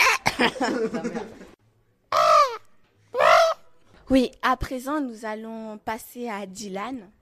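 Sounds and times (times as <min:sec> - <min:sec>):
laughter: 0:00.2 - 0:01.6
speech: 0:00.4 - 0:01.5, 0:04.1 - 0:07.2
child imitating a pterodactyl's cry in a play: 0:02.1 - 0:03.6.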